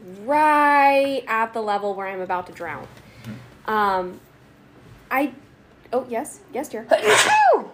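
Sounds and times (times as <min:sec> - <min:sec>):
speech: 0:00.2 - 0:04.3, 0:05.1 - 0:07.7
sneeze: 0:06.9 - 0:07.7.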